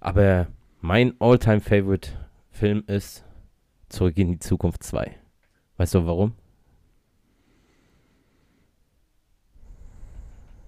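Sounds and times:
speech: 0.1s - 3.3s, 3.9s - 5.2s, 5.8s - 6.4s
person breathing: 6.6s - 10.6s.

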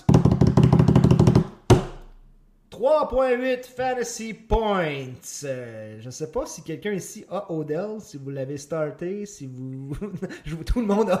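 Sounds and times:
knocking on a door: 0.0s - 2.0s
speech: 2.8s - 11.1s
laughter: 9.9s - 11.1s.

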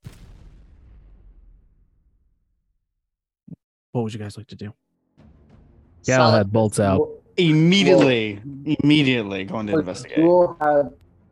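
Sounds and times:
heavy explosion outside rocking the ground: 0.0s - 2.8s
speech: 3.9s - 4.9s, 6.0s - 11.0s.

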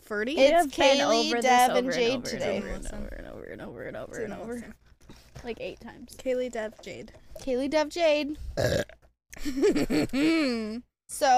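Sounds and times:
speech: 0.1s - 4.8s, 5.4s - 11.3s
drawn-out croaky burp: 8.6s - 9.0s.

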